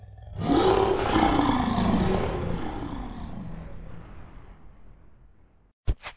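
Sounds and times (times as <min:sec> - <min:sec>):
lion roaring: 0:00.0 - 0:04.8.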